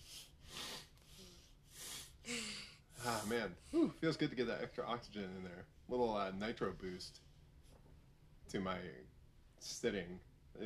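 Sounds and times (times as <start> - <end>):
wet nasal sniffles: 0.0 - 3.4
speech: 3.0 - 7.3, 8.5 - 10.6.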